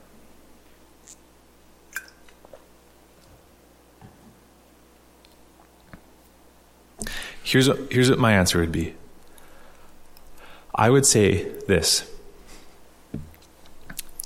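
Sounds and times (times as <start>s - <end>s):
person sipping and swallowing water: 1.9s - 2.7s
speech: 7.5s - 9.0s, 10.8s - 12.1s.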